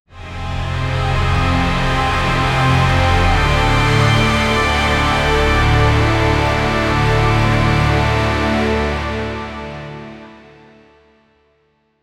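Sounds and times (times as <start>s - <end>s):
epic cinematic braam: 0.1s - 10.9s.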